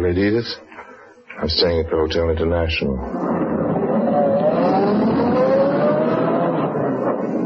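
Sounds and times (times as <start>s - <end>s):
speech: 0.0s - 0.7s, 1.4s - 3.4s
limousine engine starting and accelerating: 3.0s - 7.4s.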